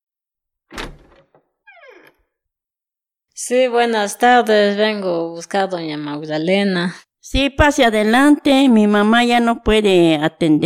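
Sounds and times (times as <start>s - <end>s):
heavy wooden door thudding and rattling as it is unlatched: 0.7s - 2.2s
speech: 3.4s - 10.6s.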